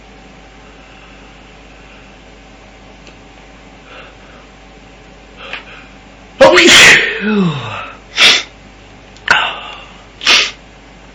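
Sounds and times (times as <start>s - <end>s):
person sneezing: 6.5s - 8.5s, 9.3s - 10.6s
speech: 6.6s - 6.8s.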